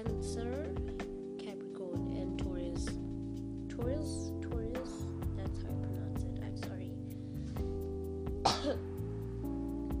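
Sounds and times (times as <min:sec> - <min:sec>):
quiet steady musical background with sustained tones: 0:00.1 - 0:09.9
single short cough: 0:08.4 - 0:08.9.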